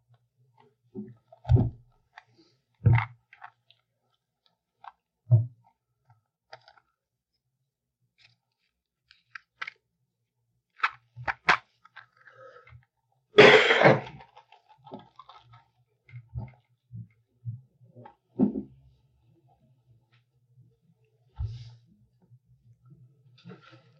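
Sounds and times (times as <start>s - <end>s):
faint small sounds: 0.0s - 13.4s, 14.0s - 23.9s
person with a cold coughing: 13.4s - 14.1s.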